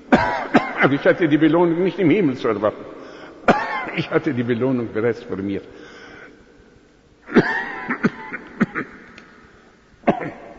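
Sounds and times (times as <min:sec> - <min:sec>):
person coughing in a harsh coughing fit: 0:00.1 - 0:00.9, 0:03.5 - 0:04.2, 0:07.3 - 0:09.1, 0:10.0 - 0:10.5
speech: 0:00.8 - 0:03.0, 0:03.9 - 0:05.8.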